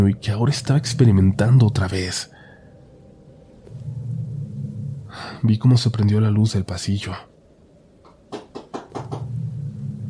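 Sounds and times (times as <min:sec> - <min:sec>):
speech: 0:00.0 - 0:02.4, 0:05.4 - 0:07.3
low steady hum: 0:00.0 - 0:10.0
knocking on a door: 0:08.3 - 0:09.3.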